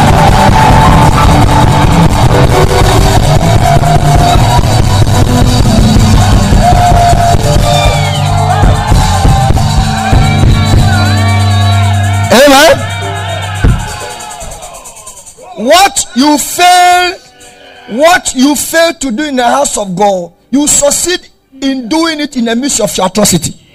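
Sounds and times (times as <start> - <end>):
church audience shouting and cheering: 0.0 - 18.5
speech: 18.2 - 23.6.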